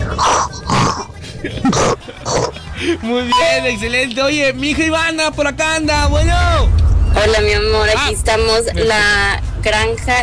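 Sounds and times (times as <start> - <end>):
human voice imitating a pig's nasal grunting oinks: 0.0 - 2.6
laughter: 0.0 - 5.6
speech: 1.4 - 10.2.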